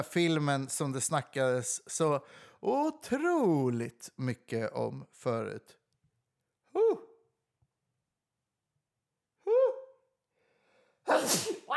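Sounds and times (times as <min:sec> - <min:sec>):
speech: 0:00.0 - 0:05.8, 0:11.1 - 0:11.7
loud sneeze with drawn-out buildup: 0:11.1 - 0:11.7.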